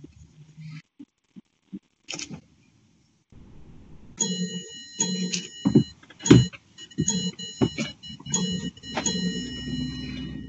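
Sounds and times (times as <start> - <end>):
clock chiming seven o'clock during a council meeting: 4.2 - 10.4.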